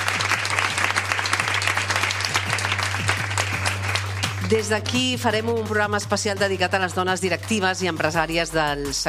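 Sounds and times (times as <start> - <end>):
large live audience applauding in the Mediàtic building in Barcelona: 0.0 - 4.7
speech: 4.5 - 9.0.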